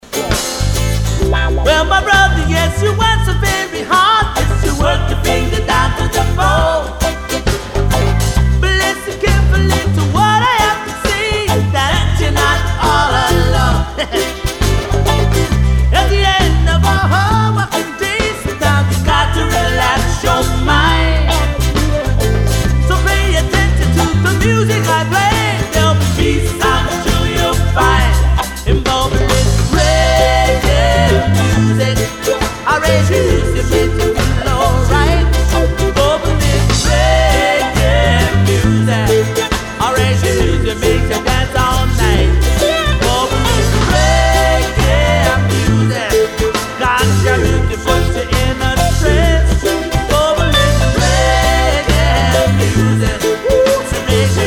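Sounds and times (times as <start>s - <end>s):
bubbling reggae music: 0.0s - 54.4s.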